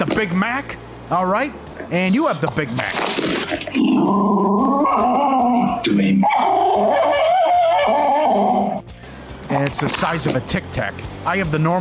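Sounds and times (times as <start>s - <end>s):
speech: 0.1s - 7.2s, 9.5s - 11.7s
dog snarling and growling aggressively: 1.8s - 8.8s.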